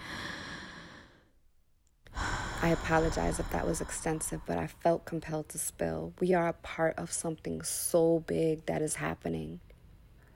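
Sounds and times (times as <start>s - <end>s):
deep breath exhale: 0.0s - 1.3s, 2.1s - 4.7s
speech: 2.6s - 9.7s.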